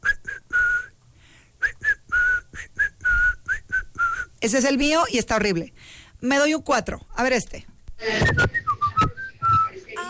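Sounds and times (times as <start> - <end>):
person whistling a short tuneful call: 0.0 - 1.0, 1.6 - 4.3, 8.2 - 9.8
speech: 4.4 - 8.6.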